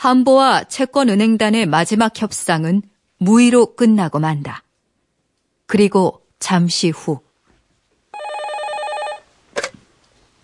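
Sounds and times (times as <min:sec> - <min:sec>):
speech: 0:00.0 - 0:04.6, 0:05.7 - 0:07.3
telephone bell ringing: 0:08.2 - 0:09.4.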